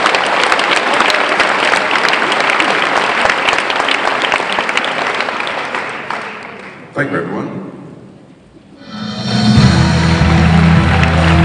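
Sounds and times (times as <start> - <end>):
sustained applause from a large audience: 0.0 - 6.8, 9.8 - 11.4
speech: 7.0 - 7.7.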